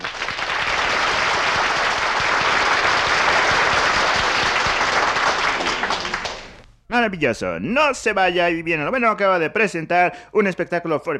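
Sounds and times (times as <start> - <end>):
audience applause for a car stunt act: 0.0 - 6.6
speech: 7.0 - 11.1.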